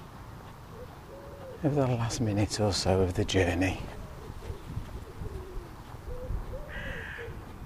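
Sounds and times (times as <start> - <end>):
dove cooing: 0.6 - 1.7, 3.8 - 7.5
speech: 1.6 - 4.0
crow cawing: 6.2 - 7.4.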